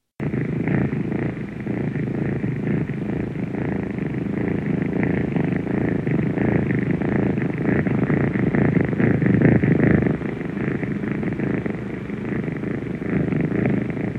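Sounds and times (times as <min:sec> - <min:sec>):
cat purring: 0:00.2 - 0:14.1.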